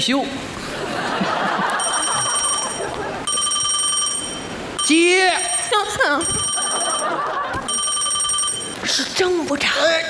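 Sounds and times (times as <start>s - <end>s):
speech: 0.0s - 0.5s, 4.9s - 7.3s, 8.9s - 10.0s
laughter: 0.6s - 3.3s, 5.8s - 7.8s
telephone ringing in bright trilling bursts: 1.7s - 9.0s.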